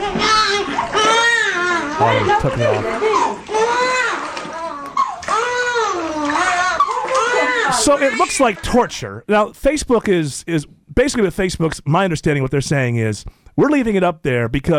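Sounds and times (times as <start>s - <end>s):
water splashing: 0.0s - 9.1s
baby screaming and crying: 0.1s - 8.4s
speech: 2.0s - 3.1s, 7.8s - 14.7s.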